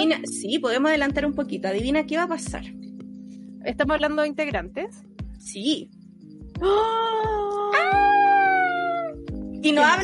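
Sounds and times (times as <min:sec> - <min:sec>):
speech: 0:00.0 - 0:02.8, 0:03.6 - 0:06.0, 0:06.6 - 0:07.6, 0:09.6 - 0:10.0
person imitating a cat meow: 0:06.6 - 0:09.3.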